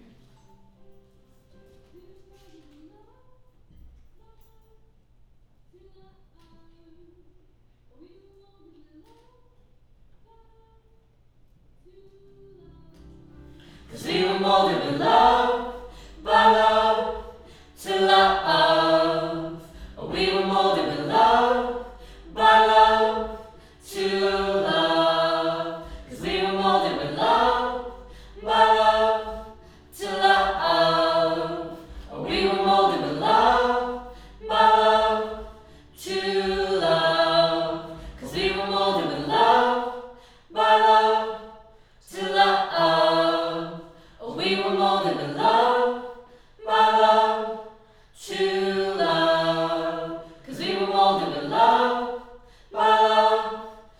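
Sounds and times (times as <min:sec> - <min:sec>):
choir singing: 0:13.4 - 0:53.9.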